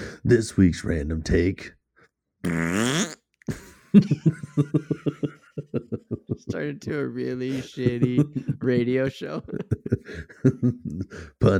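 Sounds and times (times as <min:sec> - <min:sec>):
speech: 0:00.2 - 0:01.8, 0:02.4 - 0:05.2, 0:06.3 - 0:11.5
long buzzy fart and sputtering toots: 0:02.4 - 0:03.2
laughter: 0:03.5 - 0:06.7, 0:07.5 - 0:11.1.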